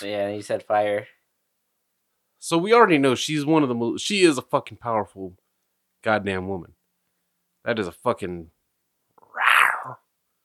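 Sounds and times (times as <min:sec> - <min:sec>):
speech: 0:00.0 - 0:01.2, 0:02.4 - 0:05.4, 0:06.0 - 0:06.8, 0:07.6 - 0:08.6, 0:09.8 - 0:10.0
person imitating a cat meow: 0:09.2 - 0:10.0.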